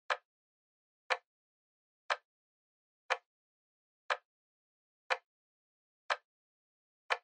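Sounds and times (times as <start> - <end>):
clock second hand ticking: 1.1 - 1.3, 3.1 - 3.3, 5.1 - 5.3, 6.1 - 6.3.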